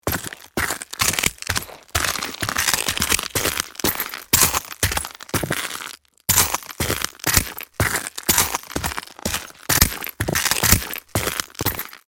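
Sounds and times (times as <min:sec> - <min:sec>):
shoes walking fast on broken glass: 0:00.0 - 0:12.0.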